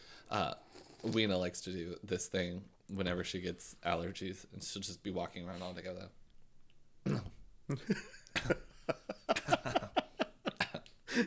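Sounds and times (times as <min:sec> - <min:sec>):
speech: 0:00.3 - 0:06.2, 0:07.0 - 0:09.8
throat clearing: 0:07.0 - 0:07.4
dry coughing: 0:07.0 - 0:08.6, 0:10.5 - 0:11.2.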